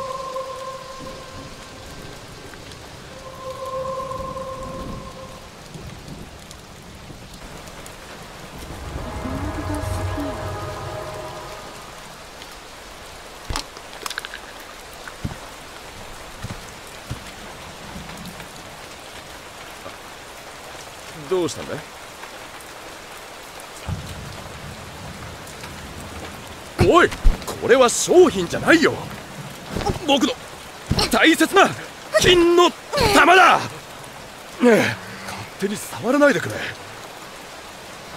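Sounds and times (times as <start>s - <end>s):
steady heavy rain: 0.0s - 38.1s
deep roll of thunder: 0.9s - 13.0s, 23.8s - 29.5s
speech: 21.4s - 21.9s, 26.9s - 29.2s, 30.1s - 30.4s, 31.1s - 33.7s, 34.6s - 35.0s, 35.6s - 36.8s.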